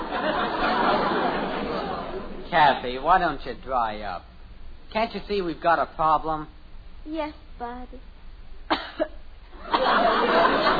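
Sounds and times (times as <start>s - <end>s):
laughter: 0.0s - 2.5s, 9.6s - 10.7s
continuous noisy sound: 0.0s - 10.7s
speech: 2.6s - 4.3s, 4.9s - 8.1s
deliberately phony coughing: 8.7s - 9.2s.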